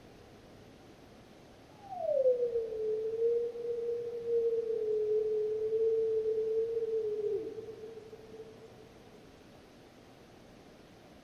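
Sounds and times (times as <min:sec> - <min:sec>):
lone wolf howl: 0:01.8 - 0:08.7.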